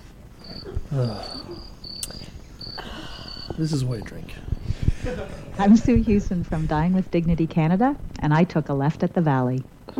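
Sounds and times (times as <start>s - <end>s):
crickets chirping: 0.4s - 7.2s
speech: 0.9s - 1.8s, 3.6s - 9.9s.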